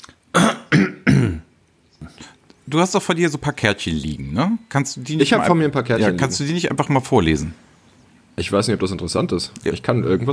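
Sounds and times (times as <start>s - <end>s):
harsh throat clearing: 0.3s - 2.3s
speech: 2.7s - 7.6s, 8.4s - 10.3s.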